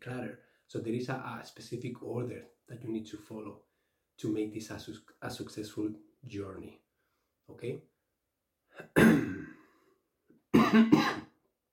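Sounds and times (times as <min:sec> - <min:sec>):
speech: 0:00.0 - 0:06.8, 0:07.5 - 0:07.9, 0:08.8 - 0:09.6, 0:10.7 - 0:11.2
person coughing: 0:08.8 - 0:09.8, 0:10.5 - 0:11.4.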